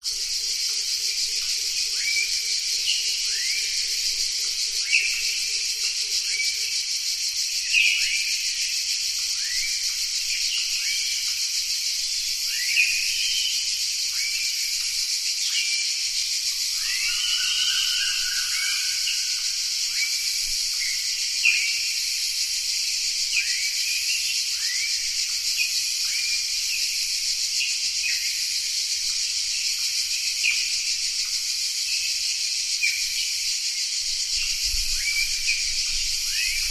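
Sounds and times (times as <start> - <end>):
nature rainforest ambience: 0.0 - 36.6.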